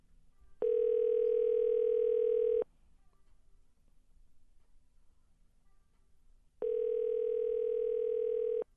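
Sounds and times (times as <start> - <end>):
faint noise: 0.0 - 8.7
telephone dial tone: 0.6 - 2.6, 6.6 - 8.6.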